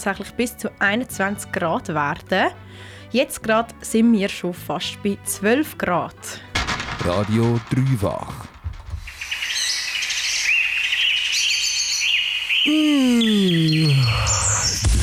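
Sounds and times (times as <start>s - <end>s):
speech: 0.0s - 8.5s, 12.7s - 14.5s
chorus of birds chirping and trilling: 8.6s - 14.9s.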